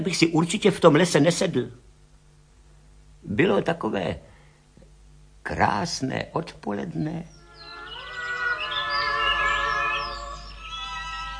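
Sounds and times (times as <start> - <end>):
speech: 0.0 - 1.8, 3.2 - 4.3, 5.5 - 7.4
birds singing in a forest in the afternoon: 6.7 - 11.3.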